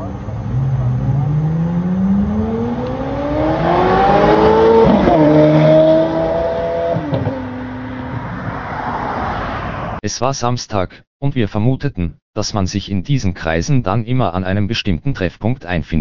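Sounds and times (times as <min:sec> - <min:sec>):
convoy of sports cars revving and accelerating away from a traffic light in Singapore: 0:00.0 - 0:09.2
speech: 0:10.1 - 0:15.9.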